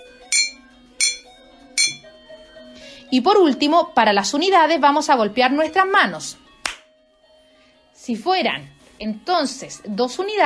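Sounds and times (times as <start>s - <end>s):
spoon striking: 0.2s - 2.1s
speech: 3.1s - 6.4s, 8.1s - 10.4s.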